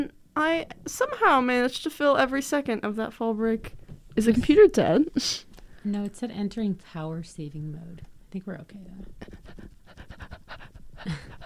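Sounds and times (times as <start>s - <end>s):
speech: 0.0s - 9.7s, 11.0s - 11.4s
person panting rapidly mimicking a dog: 9.3s - 11.4s.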